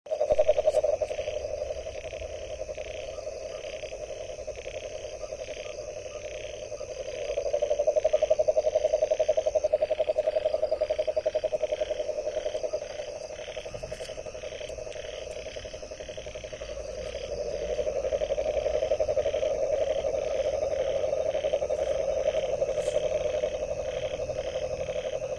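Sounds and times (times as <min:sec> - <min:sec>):
frog calling in a continuous pulsed trill: 0:00.1 - 0:25.3
soft insect-like chirps: 0:00.1 - 0:25.3.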